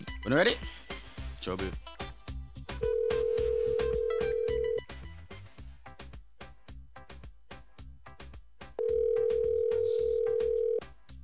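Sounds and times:
rhythmic music beat: 0.0 - 11.2
speech: 0.2 - 0.8, 1.4 - 1.9
ringback tones of an outgoing phone call: 2.9 - 4.8, 8.8 - 10.8.

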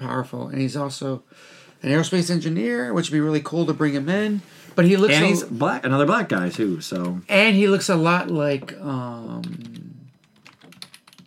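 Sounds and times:
speech: 0.0 - 9.8
typing on a computer keyboard: 9.3 - 11.2.

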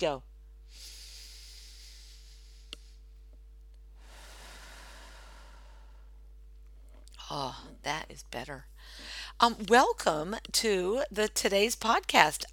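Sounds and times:
speech: 0.0 - 0.9, 7.3 - 12.5
deep breath in through the nose and out through the mouth: 0.6 - 3.1, 3.9 - 6.3, 8.8 - 9.4.

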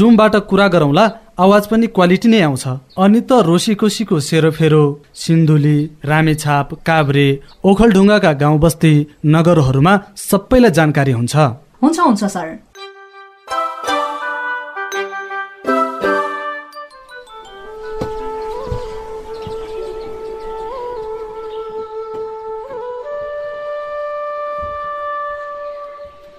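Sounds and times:
speech: 0.0 - 12.7
chiming plucked-sounding notes: 12.8 - 20.0
bansuri bamboo flute melody: 12.8 - 26.3.

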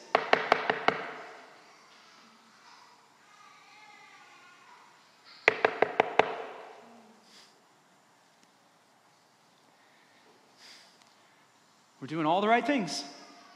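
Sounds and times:
sharp knocking on a door: 0.1 - 1.2, 5.5 - 6.6
speech: 12.1 - 13.2.

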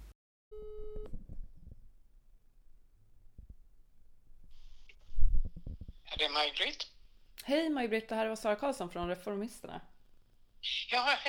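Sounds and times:
brief electronic telephone ringing tone while placing a call: 0.5 - 1.0
speech: 6.2 - 9.9, 10.6 - 11.2.

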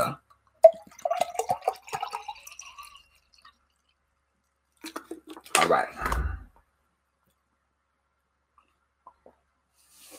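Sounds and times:
water poured to drink outdoors in humid weather: 0.3 - 5.9
speech: 5.7 - 6.2.

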